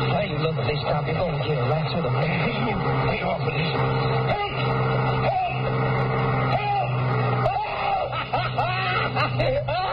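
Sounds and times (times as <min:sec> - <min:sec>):
cross-country bus engine running: 0:00.0 - 0:09.8
speech: 0:00.3 - 0:06.1
laughter: 0:07.5 - 0:09.9.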